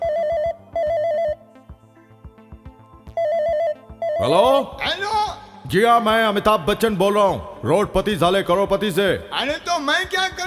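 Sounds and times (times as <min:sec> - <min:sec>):
mobile phone ringing after placing a call: 0:00.0 - 0:01.4, 0:03.1 - 0:05.2
soft rhythmic musical backing: 0:00.0 - 0:10.4
speech: 0:04.2 - 0:10.4.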